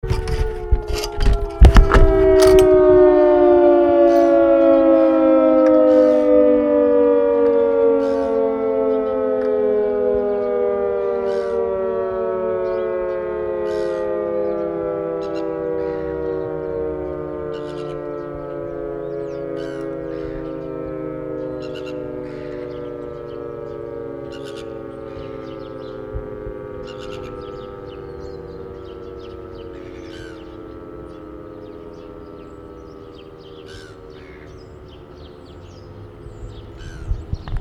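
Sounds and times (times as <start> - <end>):
siren: 0.0 - 37.5.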